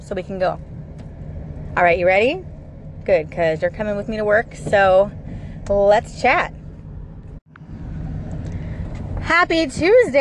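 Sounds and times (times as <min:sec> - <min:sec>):
old car engine and road noise heard from inside the cabin: 0:00.0 - 0:10.1
speech: 0:00.1 - 0:00.7, 0:01.8 - 0:06.6, 0:09.3 - 0:10.1.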